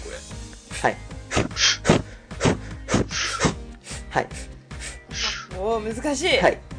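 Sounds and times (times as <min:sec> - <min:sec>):
forceful breaths pushed out through the mouth during a breathing exercise: 0:00.6 - 0:05.5
speech: 0:00.8 - 0:01.8, 0:04.2 - 0:04.5, 0:05.6 - 0:06.7.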